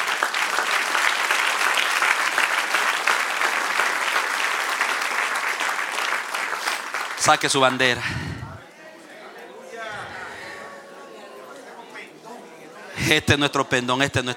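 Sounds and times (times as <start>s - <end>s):
audience applause: 0.0s - 8.6s
speech: 7.2s - 8.3s, 13.1s - 14.3s.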